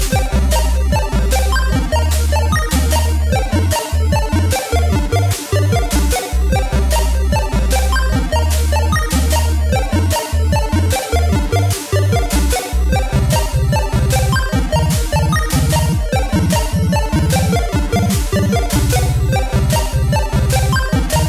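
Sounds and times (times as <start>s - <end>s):
arpeggio: 0.1s - 21.2s.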